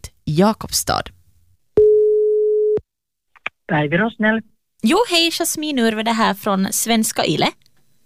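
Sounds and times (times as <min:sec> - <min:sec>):
speech: 0:00.4 - 0:01.2, 0:03.7 - 0:07.6
telephone ringing tone while a call connects: 0:01.8 - 0:02.8.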